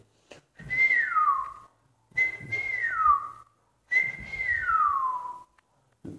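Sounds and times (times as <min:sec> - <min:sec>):
person whistling descending tunes imitating birdsong: 0:00.7 - 0:05.5.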